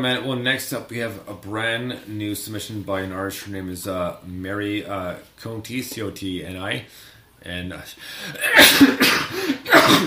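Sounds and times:
speech: 0.0 - 10.0
person sneezing: 8.2 - 10.0.

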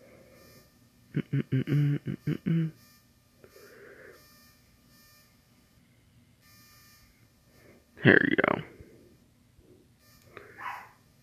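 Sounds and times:
speech: 1.2 - 2.6, 8.0 - 8.4
small dog barking faintly: 10.5 - 11.0.

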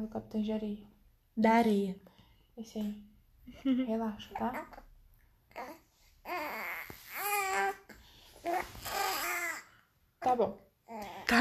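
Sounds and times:
speech: 0.0 - 4.8, 10.2 - 11.3
baby girl babbling: 5.5 - 9.7.

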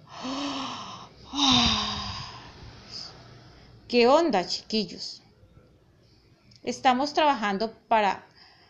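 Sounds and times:
narrator imitating a bear's yawn: 0.1 - 2.6
speech: 3.9 - 5.2, 6.6 - 8.3.

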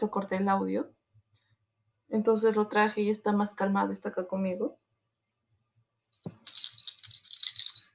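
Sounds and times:
speech: 0.0 - 1.0, 2.1 - 4.8
small jingle bell on a dog's collar jingling: 6.3 - 7.9.

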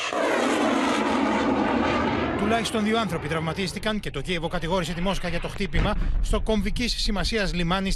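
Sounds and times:
attack drone engine buzzing overhead at the port of Odesa: 0.0 - 6.3
speech: 2.5 - 7.9.

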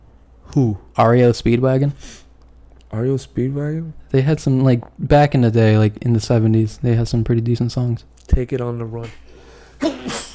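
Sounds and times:
speech: 0.5 - 2.2, 2.9 - 9.2, 9.8 - 10.2
sneeze: 9.8 - 10.3.

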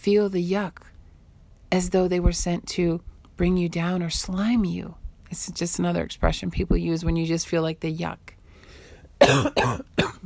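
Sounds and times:
speech: 0.0 - 0.9, 1.7 - 8.4, 9.2 - 10.2
loud coughs: 9.2 - 10.2.

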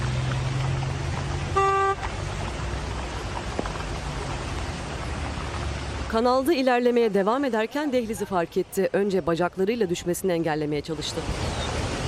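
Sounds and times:
heavy rain or water noise during floods: 0.0 - 12.0
car horn honking during floods in Mexico: 1.5 - 2.1
speech: 6.1 - 11.4.

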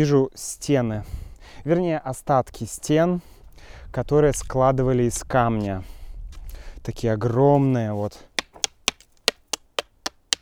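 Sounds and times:
speech: 0.0 - 3.3, 3.9 - 6.0, 6.8 - 8.3
hand tapping on stone wall of an ancient hilltop fortress: 8.4 - 10.4.

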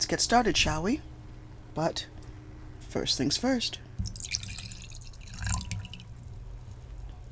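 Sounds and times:
speech: 0.1 - 1.1, 1.8 - 2.2, 2.9 - 3.8
wine being poured into a glass: 4.0 - 7.3.

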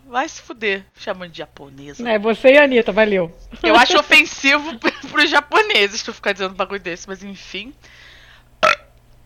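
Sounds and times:
speech: 0.1 - 8.1
laughter: 3.6 - 5.6
burp: 8.6 - 9.0.

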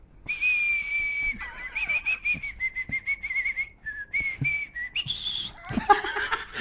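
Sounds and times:
person whistling a simple tune: 0.3 - 5.6
faint laughter: 1.3 - 2.4, 5.5 - 6.6.

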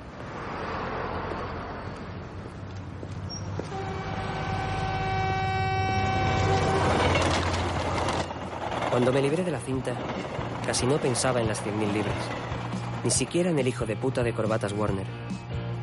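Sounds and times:
train passing beneath a bridge: 1.1 - 15.1
steady whining tone: 3.7 - 13.5
speech: 9.0 - 15.4.

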